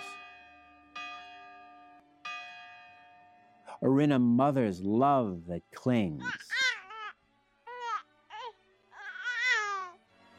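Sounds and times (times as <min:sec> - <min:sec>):
church bell tolling: 0:00.0 - 0:04.4
speech: 0:03.8 - 0:06.5.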